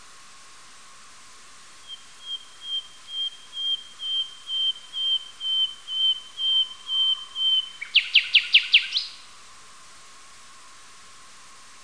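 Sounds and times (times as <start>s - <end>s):
common nightingale Luscinia megarhynchos song: 1.7s - 9.4s.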